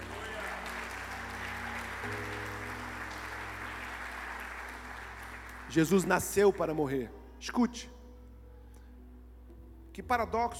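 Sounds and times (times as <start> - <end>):
audience applause: 0.0 - 6.4
speech: 5.7 - 8.0, 10.0 - 10.5.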